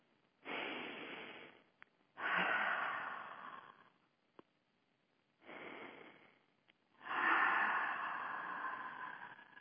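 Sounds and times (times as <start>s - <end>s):
slow deep breaths during a guided relaxation: 0.4s - 4.1s, 5.4s - 9.5s.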